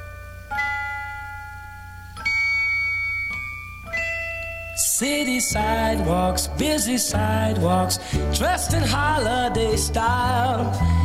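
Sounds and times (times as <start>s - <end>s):
bright bell-like chords of a Christmas record instrumental intro: 0.0s - 11.0s
speech: 5.0s - 11.0s.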